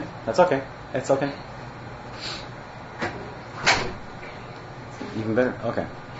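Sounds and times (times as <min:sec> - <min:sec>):
speech: 0:00.2 - 0:01.5, 0:05.2 - 0:06.0
door shutting with a thud: 0:03.0 - 0:04.0.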